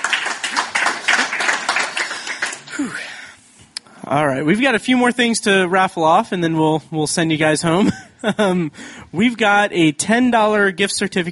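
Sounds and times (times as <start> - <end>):
audience applause: 0.0 - 2.9
speech: 4.1 - 11.3.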